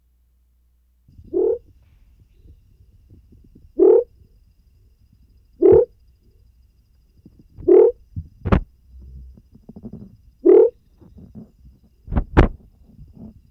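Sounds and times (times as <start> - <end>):
Leptodactylus knudseni frog calling: 1.2 - 11.5.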